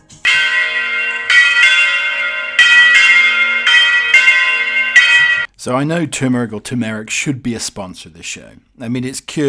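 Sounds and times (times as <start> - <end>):
church bells ringing: 0.2 - 5.5
speech: 5.6 - 9.4.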